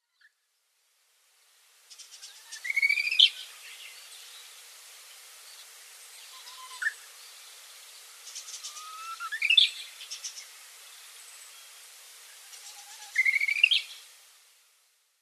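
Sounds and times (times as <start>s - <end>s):
Korean Bush Warbler singing: 1.9s - 14.1s.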